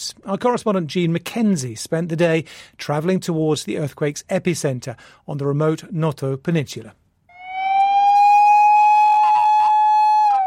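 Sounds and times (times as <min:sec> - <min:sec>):
speech: 0:00.0 - 0:07.0
emergency vehicle siren wailing: 0:07.3 - 0:10.4.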